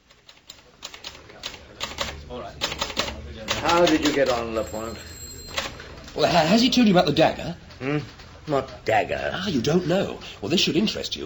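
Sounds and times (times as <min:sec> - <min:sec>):
manual typewriter clattering: 0:00.0 - 0:04.7, 0:05.5 - 0:06.3
speech: 0:03.6 - 0:05.1, 0:06.2 - 0:11.2.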